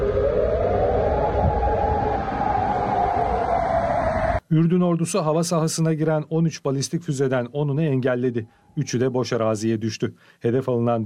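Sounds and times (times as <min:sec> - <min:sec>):
air raid sirens wailing during missile and drone attacks: 0:00.0 - 0:04.4
speech: 0:04.5 - 0:11.0.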